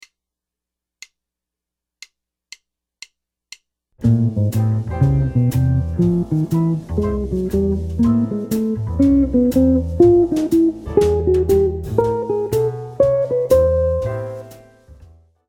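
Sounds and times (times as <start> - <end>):
guitar playing arpeggio enclosures: 4.0 - 14.5.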